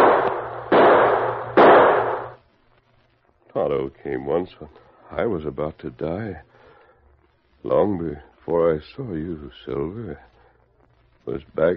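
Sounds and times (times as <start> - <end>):
gunshots: 0.0 - 2.4
speech: 3.6 - 6.5, 7.6 - 10.3, 11.2 - 11.7.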